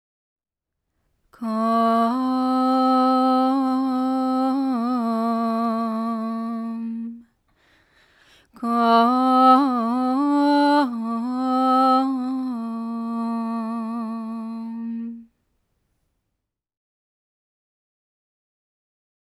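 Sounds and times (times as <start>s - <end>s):
female vocal: 1.4s - 7.3s, 8.5s - 15.3s.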